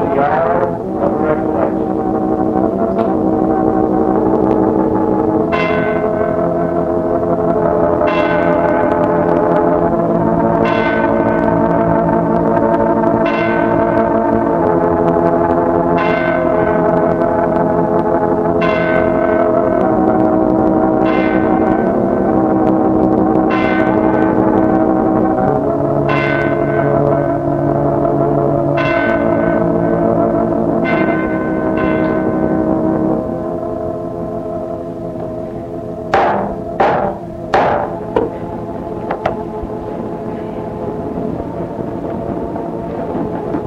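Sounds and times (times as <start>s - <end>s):
deep bell tolling: 0.0s - 43.6s.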